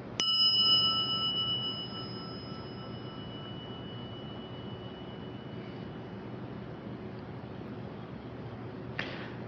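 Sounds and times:
single bell struck and ringing out with a clear bright tone: 0.0s - 6.8s
low steady rumble: 0.0s - 9.4s.

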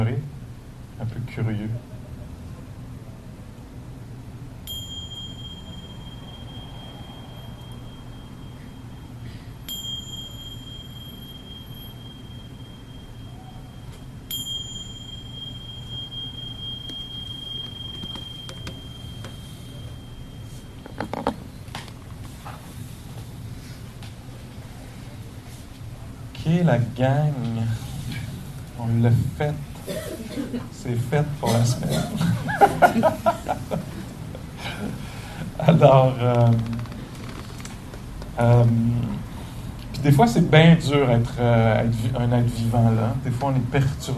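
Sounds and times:
steady low hum: 0.0s - 44.1s
speech: 1.1s - 2.0s, 26.7s - 27.5s, 28.9s - 29.7s, 30.4s - 33.8s, 35.8s - 36.8s, 38.4s - 39.2s, 40.0s - 44.1s
meditation bell struck: 4.6s - 21.6s, 31.4s - 34.0s
laughter: 31.6s - 35.0s.

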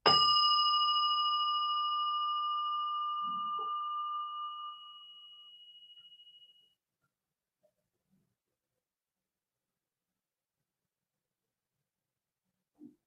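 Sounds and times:
meditation bell ringing with a clear metallic tone: 0.0s - 6.7s.

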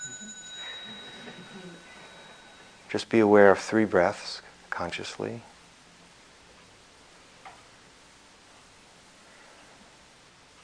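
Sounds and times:
meditation bell ringing with a clear tone: 0.0s - 3.8s
speech: 2.9s - 5.5s.

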